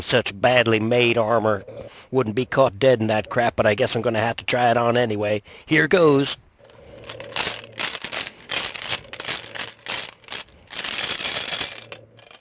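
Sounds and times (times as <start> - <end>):
speech: 0.0 - 6.4, 7.1 - 7.4
handful of dice rattling inside a clear plexiglass baseball display cube: 6.6 - 12.3.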